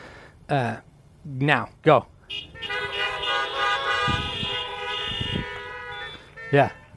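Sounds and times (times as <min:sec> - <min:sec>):
speech: 0:00.5 - 0:02.7, 0:06.5 - 0:06.8
car horns honking in applause: 0:02.2 - 0:06.9.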